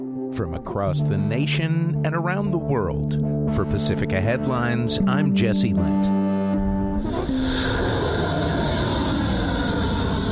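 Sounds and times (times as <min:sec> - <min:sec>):
speech: 0:00.3 - 0:08.3
U.S. military aircraft engine roar launching for strikes: 0:07.0 - 0:10.3.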